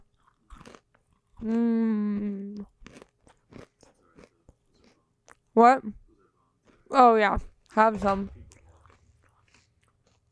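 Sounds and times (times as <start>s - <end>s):
person crunching almond roca toffee candy: 0.0s - 1.7s, 2.6s - 5.5s, 7.6s - 10.3s
speech: 1.4s - 1.8s, 5.6s - 6.0s, 7.0s - 8.4s.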